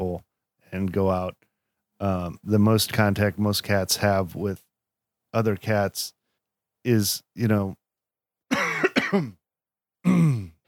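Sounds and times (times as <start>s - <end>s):
speech: 0.7s - 4.6s, 5.3s - 6.2s, 6.8s - 7.8s, 9.1s - 9.4s, 10.0s - 10.5s
person coughing: 8.5s - 9.4s, 10.0s - 10.6s.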